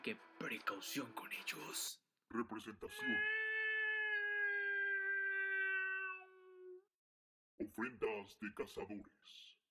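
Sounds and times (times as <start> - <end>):
speech: 0.0 - 3.4, 7.6 - 9.6
cat meowing demanding a treat: 2.9 - 6.8.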